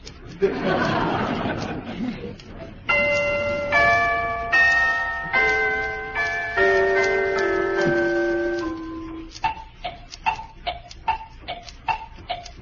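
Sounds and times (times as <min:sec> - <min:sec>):
Chinese woodblocks imitating clock tick-tock: 0:00.0 - 0:12.6
laughter: 0:00.2 - 0:02.8
speech: 0:00.4 - 0:01.0, 0:02.0 - 0:03.2
chiming bell-like notes: 0:02.9 - 0:09.3
piano in a stage act: 0:02.9 - 0:09.4
celesta in a stage act: 0:02.9 - 0:09.5
toy bells in a stage act: 0:02.9 - 0:12.5.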